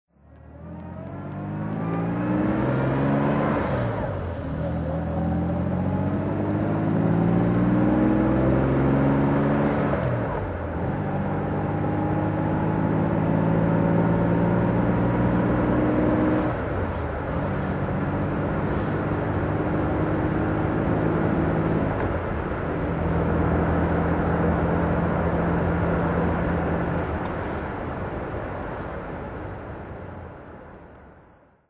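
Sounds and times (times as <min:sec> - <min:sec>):
1956 Jaguar XK 140 3.4 Litre OTS engine driving: 0:00.1 - 0:31.0.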